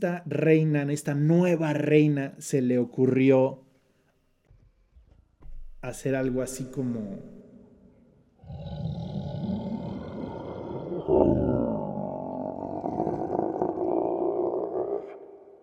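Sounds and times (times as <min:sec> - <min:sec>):
speech: 0:00.0 - 0:03.6, 0:05.8 - 0:07.4
deep sustained roar with infrasonic rumble made by a performer: 0:08.4 - 0:15.6.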